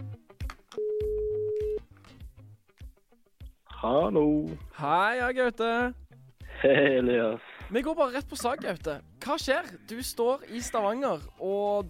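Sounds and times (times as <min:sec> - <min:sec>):
busy background of music-like broadband sounds: 0:00.0 - 0:11.8
electronic telephone ringback tone while placing a call: 0:00.8 - 0:01.8
speech: 0:03.8 - 0:06.0, 0:06.6 - 0:11.8.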